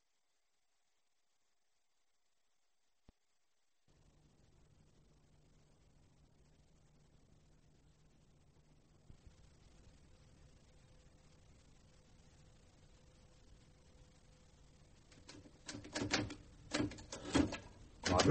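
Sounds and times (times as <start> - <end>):
faint steady hiss: 0.0 - 18.2
typewriter keys clacking: 15.2 - 18.2.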